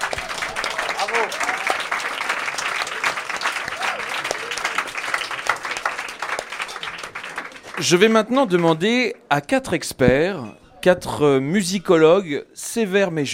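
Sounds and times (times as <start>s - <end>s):
cheers: 0.0s - 6.8s
dense applause from a large audience: 0.0s - 8.8s
speech: 7.8s - 13.3s.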